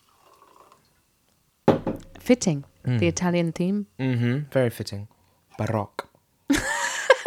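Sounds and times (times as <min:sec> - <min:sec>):
prosecco being poured into a glass: 0:00.0 - 0:01.0
faint fizzy hiss of prosecco: 0:00.0 - 0:04.0
speech: 0:02.3 - 0:06.6.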